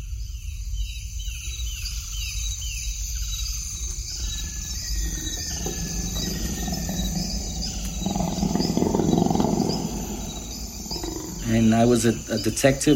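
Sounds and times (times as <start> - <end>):
jungle insects buzzing: 0.2 - 12.9
jungle birds chirping: 1.5 - 12.9
tiger roaring in the jungle: 4.4 - 12.3
speech: 12.0 - 12.9.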